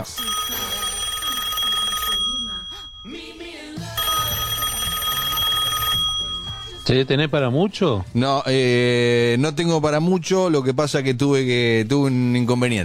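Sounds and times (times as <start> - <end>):
speech: 0.0 - 0.3, 6.9 - 12.8
telephone ringing on an outgoing call: 0.0 - 7.4.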